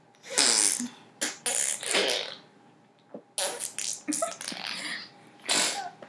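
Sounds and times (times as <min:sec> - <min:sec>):
person imitating a fart with mouth raspberries: 0:00.2 - 0:02.4, 0:03.4 - 0:06.0.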